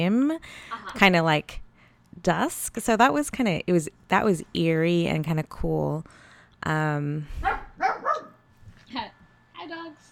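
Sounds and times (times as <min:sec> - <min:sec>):
speech: 0:00.0 - 0:01.6, 0:02.2 - 0:07.5
dog barking: 0:07.4 - 0:08.4.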